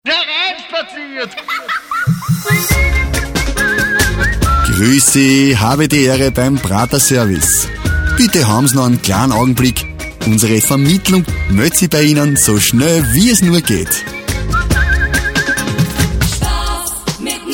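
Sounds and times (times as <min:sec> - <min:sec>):
laughter: 0:01.2 - 0:02.7
music on hold: 0:02.0 - 0:17.5.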